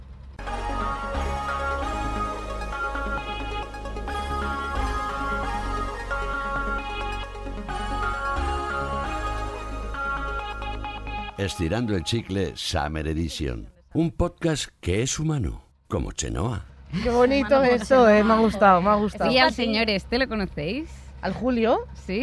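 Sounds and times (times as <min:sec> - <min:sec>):
upbeat instrumental podcast intro theme with pulsing bass line: 0:00.4 - 0:12.9
speech: 0:11.4 - 0:22.2.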